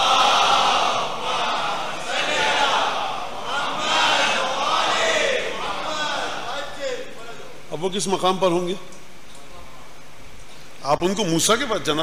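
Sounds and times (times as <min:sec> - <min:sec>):
large crowd reciting salawat in unison: 0:00.0 - 0:07.2
speech: 0:07.8 - 0:09.0, 0:10.8 - 0:12.0.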